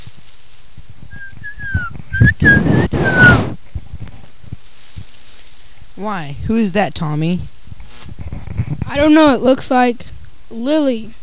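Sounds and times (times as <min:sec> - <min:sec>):
people whistling a tune while working: 0:01.1 - 0:03.6
rough busy noise of people at work: 0:01.1 - 0:03.6
speech: 0:06.0 - 0:07.6, 0:08.9 - 0:11.2.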